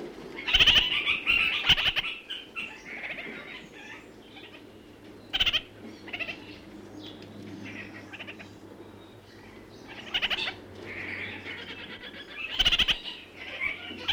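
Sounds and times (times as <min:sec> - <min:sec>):
red-crowned parakeet stuttering chatters and nasal warbling in New Zealand: 0:00.5 - 0:02.2, 0:05.3 - 0:06.5, 0:09.9 - 0:10.6, 0:11.2 - 0:14.1.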